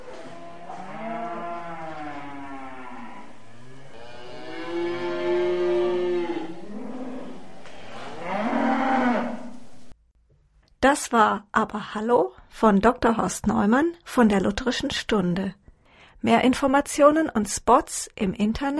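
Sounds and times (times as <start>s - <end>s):
cow mooing in a stall: 0.1s - 9.6s
speech: 10.8s - 15.6s, 16.2s - 18.7s.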